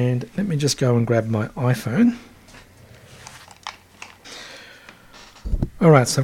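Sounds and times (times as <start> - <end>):
speech: 0.0 - 2.3, 5.8 - 6.2
Lightning cable being pulled from a keyboard: 3.2 - 4.2.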